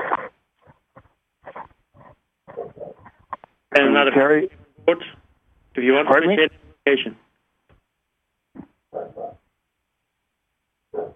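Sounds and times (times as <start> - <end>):
neighbor's dog barking: 2.5 - 3.1, 8.9 - 9.5, 10.9 - 11.1
speech: 3.8 - 5.2, 5.8 - 7.2.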